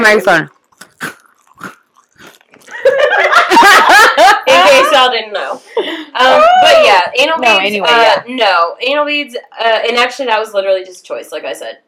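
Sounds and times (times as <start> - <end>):
speech: 0.0 - 1.7, 4.9 - 11.8
crunchy chewing of a cookie into a microphone: 0.5 - 2.9
laughter: 2.7 - 4.9.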